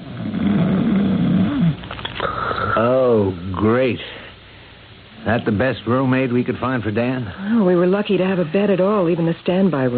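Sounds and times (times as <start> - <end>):
big heavily muscled early middle-aged man snoring in a bed: 0.0 - 2.9
noise: 0.0 - 9.9
speech: 2.8 - 4.2, 5.2 - 9.9.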